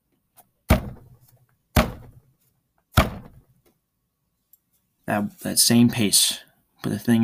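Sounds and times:
heavy door closing thuds: 0.7 - 1.2, 1.8 - 2.2, 2.9 - 3.5
speech: 5.1 - 7.2.

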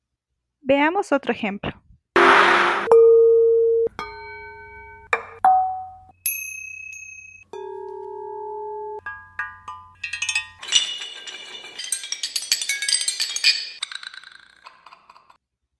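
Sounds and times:
speech: 0.7 - 1.8
metal pots, lids and ceramic pieces struck in melodies: 2.2 - 14.1.

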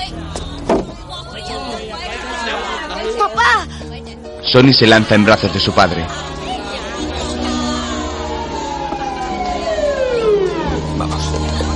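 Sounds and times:
speech: 4.5 - 6.3
police patrol car siren arriving in a Chinatown street: 4.9 - 11.7.

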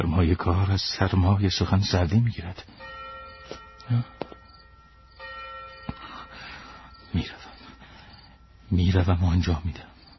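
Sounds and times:
speech: 0.0 - 2.9, 3.9 - 4.2, 7.1 - 7.4, 8.7 - 9.9
low murky noise: 0.0 - 10.1
funeral bell tolling: 2.7 - 10.1.

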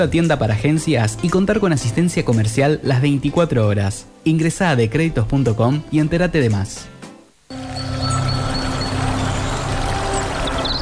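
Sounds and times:
speech: 0.0 - 7.0
high chirps: 7.4 - 10.8
flowing stream water: 7.5 - 10.8.

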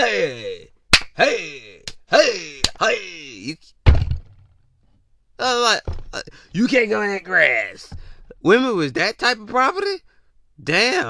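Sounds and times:
speech: 0.0 - 3.7, 5.4 - 11.0
slaps to the face: 0.9 - 1.2.

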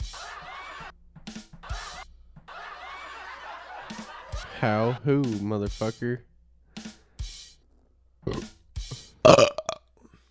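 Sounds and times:
laughter: 0.0 - 0.9, 1.6 - 5.4
speech: 3.9 - 6.3, 9.3 - 9.5
guttural burps: 8.2 - 8.5, 9.2 - 10.0.

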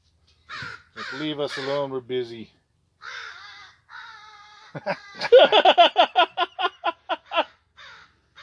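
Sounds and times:
crow cawing: 0.5 - 1.9, 3.0 - 5.3, 7.2 - 8.4
speech: 1.1 - 2.6, 4.7 - 6.2
laughter: 4.8 - 7.5.

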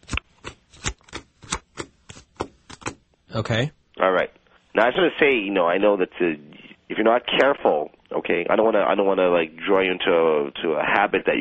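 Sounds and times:
playing cards being shuffled: 0.0 - 3.2
speech: 3.3 - 11.3.

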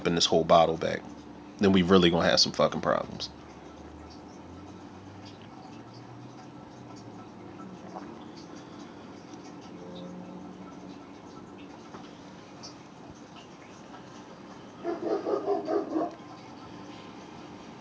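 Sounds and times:
speech: 0.0 - 3.4
neighborhood dog barking: 14.8 - 16.2.

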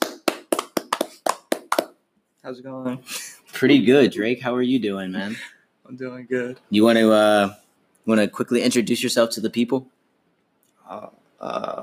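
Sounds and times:
hand clapping: 0.0 - 2.0
speech: 2.4 - 10.0, 10.9 - 11.8.

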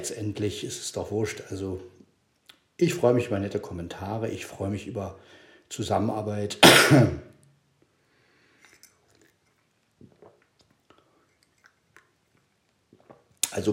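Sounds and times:
speech: 0.0 - 2.0, 2.8 - 7.3
person coughing or clearing throat: 6.6 - 7.3
faint mouth clicks and small smacking sounds: 10.0 - 13.6.

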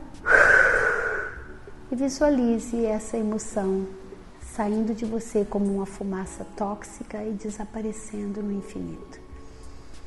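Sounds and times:
deep breath exhaled through the mouth: 0.2 - 1.5
speech: 1.9 - 4.0, 4.6 - 9.2.

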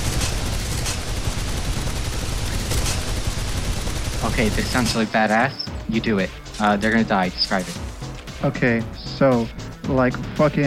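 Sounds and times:
automatic gun firing continuously until empty: 0.0 - 5.2
speech: 4.3 - 7.8, 8.4 - 10.6.

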